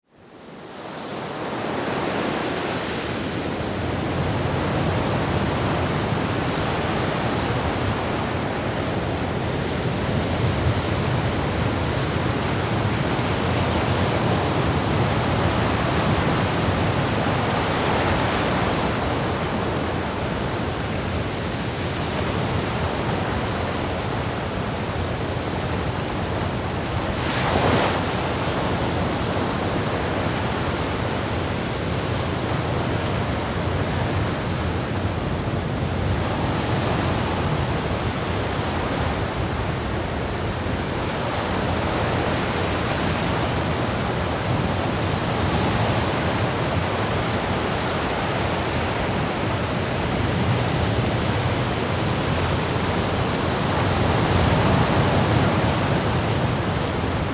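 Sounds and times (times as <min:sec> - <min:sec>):
sea: 0:00.0 - 0:57.3.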